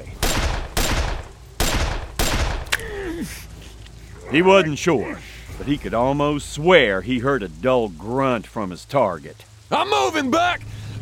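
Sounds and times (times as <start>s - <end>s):
booming gunshots on a rocky slope: 0.0s - 2.9s
speech: 4.3s - 10.8s.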